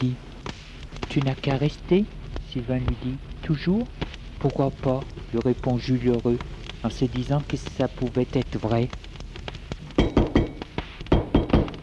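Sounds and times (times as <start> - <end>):
speech: 0.0 - 0.3, 1.1 - 9.1
solid hollow knocks on a door: 10.0 - 11.8.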